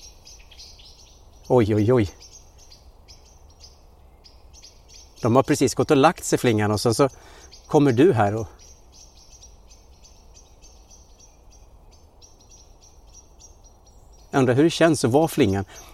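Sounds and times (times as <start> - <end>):
agitated birds calling from trees: 0.0 - 15.9
speech: 1.5 - 2.2, 5.2 - 8.6, 14.4 - 15.9.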